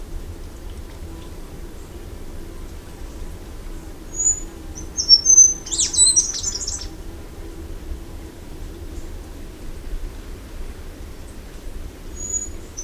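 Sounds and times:
low steady background hum: 0:00.0 - 0:12.8
Scaled flowerpiercer song with thin high whistled notes: 0:04.1 - 0:06.9, 0:12.1 - 0:12.8.

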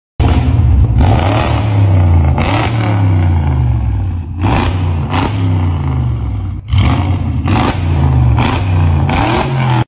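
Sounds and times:
Audi car exhaust: 0:00.2 - 0:09.8.

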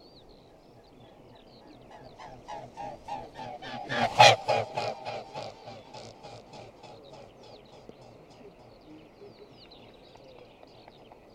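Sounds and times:
mute swan giving short honking calls: 0:01.9 - 0:08.2.

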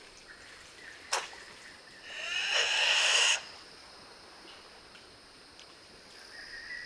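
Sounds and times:
steady hiss of insects: 0:00.0 - 0:03.8
Kagu clear whistled calls: 0:02.0 - 0:03.5.

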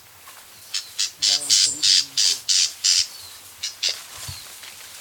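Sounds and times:
Newtonia giving scratchy repeated notes: 0:00.7 - 0:04.6.

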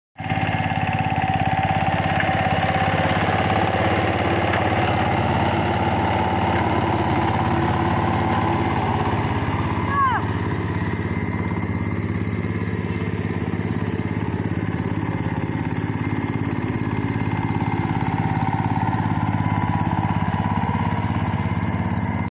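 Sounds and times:
agricultural tiller running: 0:00.2 - 0:22.2.

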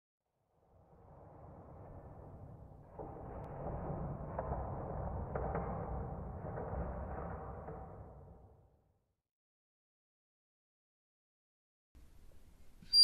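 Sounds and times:
scary swing movement: 0:00.6 - 0:08.7.

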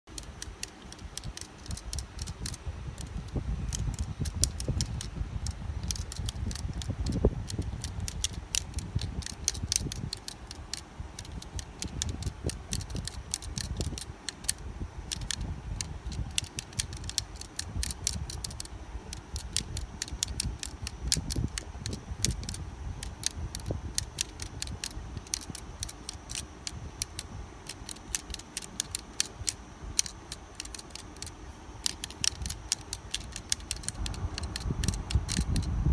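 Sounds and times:
abacus: 0:00.0 - 0:35.8.

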